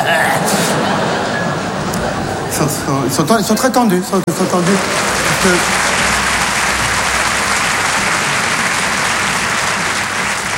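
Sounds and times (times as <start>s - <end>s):
laughter: 0.0s - 2.6s
speech: 2.6s - 6.0s
large audience applauding: 4.1s - 10.5s.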